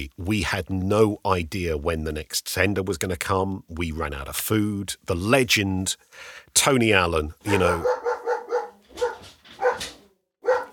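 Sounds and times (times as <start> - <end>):
speech: 0.0 - 8.0
dog barking frantically: 7.5 - 10.7.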